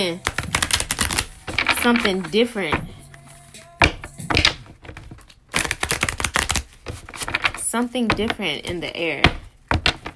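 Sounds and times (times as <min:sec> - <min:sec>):
speech: 0:00.0 - 0:00.3, 0:01.8 - 0:02.9, 0:07.7 - 0:09.4
rapid crackling riffle of tarot cards flicking together: 0:00.2 - 0:02.3, 0:04.4 - 0:07.6
deck of tarot cards being shuffled for a tarot reading: 0:00.2 - 0:10.1.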